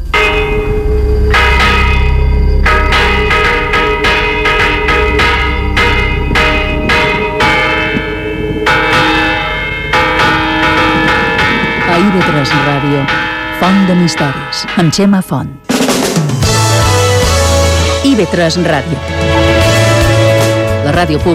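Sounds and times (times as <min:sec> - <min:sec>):
church bells pealing: 0:00.0 - 0:21.3
speech: 0:13.9 - 0:15.7, 0:18.1 - 0:19.5, 0:20.8 - 0:21.3.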